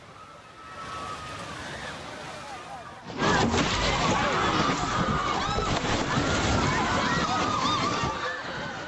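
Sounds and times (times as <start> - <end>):
many people shouting and screaming in panic while running away: 0.0 - 8.8
building collapsing after magnitude 7.4 earthquake: 3.0 - 8.8
building pieces falling: 3.1 - 7.8.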